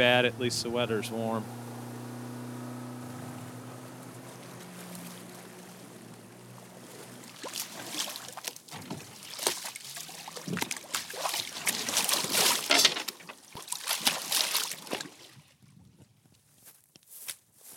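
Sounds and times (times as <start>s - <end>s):
speech: 0.0s - 1.6s
boat engine droning on the York River: 0.0s - 9.2s, 9.8s - 13.4s
choppy river water splashing and slapping against a boat hull on a breezy day: 4.0s - 15.5s.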